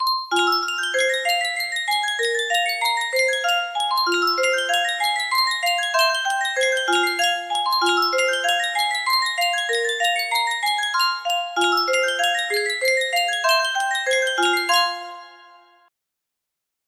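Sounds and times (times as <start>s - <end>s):
music box playing a mazurka melody: 0.0s - 15.9s.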